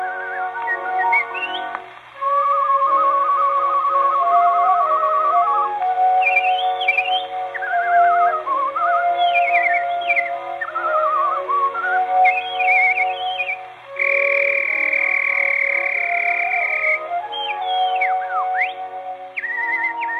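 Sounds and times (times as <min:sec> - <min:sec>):
person whistling imitating nightingale song: 0:00.0 - 0:20.1.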